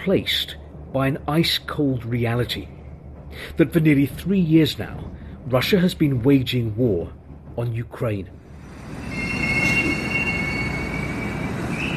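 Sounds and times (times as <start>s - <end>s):
speech: 0.0s - 9.0s
metro train rumbling through Gorky Park metro station: 0.0s - 11.9s
metro train wheels squealing in a high-pitched whine: 8.5s - 11.9s.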